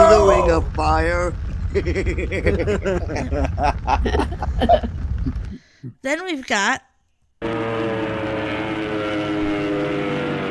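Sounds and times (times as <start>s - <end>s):
speech: 0.6s - 8.0s
laughter: 1.7s - 5.6s
airplane descending with engine drone: 7.4s - 10.4s.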